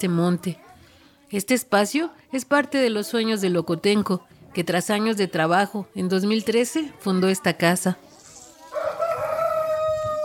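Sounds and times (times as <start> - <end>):
speech: 0.0 - 0.6, 1.3 - 8.1
rooster crowing: 8.7 - 10.2.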